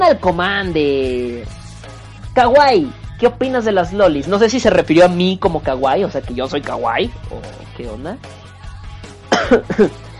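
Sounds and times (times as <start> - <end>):
speech: 0.0 - 1.6, 2.4 - 8.4, 9.3 - 10.0
coughing: 9.2 - 10.1.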